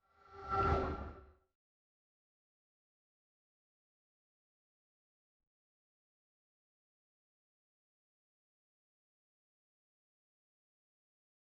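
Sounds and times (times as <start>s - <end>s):
soft metallic whoosh rising: 0.0s - 1.3s.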